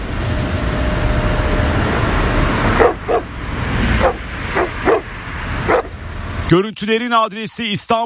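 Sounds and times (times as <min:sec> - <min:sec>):
outdoor noise: 0:00.0 - 0:08.0
stray dogs barking while chasing a person: 0:02.8 - 0:06.0
speech: 0:06.5 - 0:08.0.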